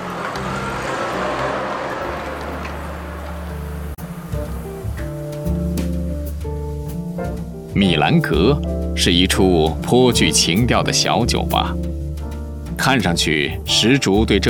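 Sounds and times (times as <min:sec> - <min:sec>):
car driving away with low engine hum: 0:00.0 - 0:08.3
speech: 0:07.8 - 0:11.9, 0:12.8 - 0:14.4.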